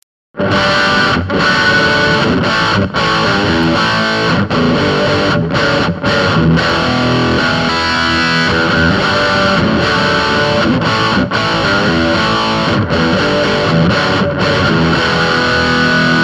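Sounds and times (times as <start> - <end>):
guitar with crunch tone: 0.3 - 16.2.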